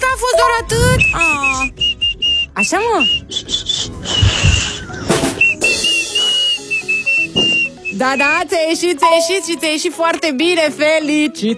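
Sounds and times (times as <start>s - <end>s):
child whistling a tune: 0.9s - 8.4s
speech: 2.6s - 4.5s, 8.0s - 11.5s.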